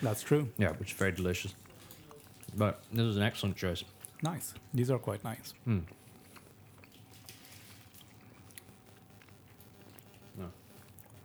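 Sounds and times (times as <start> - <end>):
speech: 0.0 - 1.7, 2.5 - 6.0, 10.4 - 10.6
people chewing chocolate: 0.0 - 11.2
person humming: 10.4 - 10.6.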